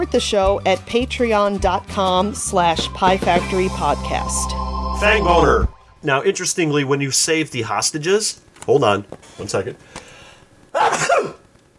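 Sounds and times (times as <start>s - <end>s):
speech: 0.0s - 10.0s
sneeze: 10.7s - 11.5s.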